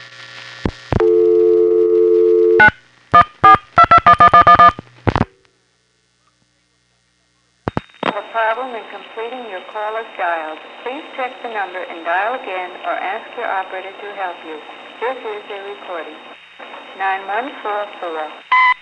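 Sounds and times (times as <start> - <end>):
steady telephone line tone: 1.0 - 4.8
tinny band-limited recorded voice over telephone line: 8.1 - 16.3, 16.9 - 18.4.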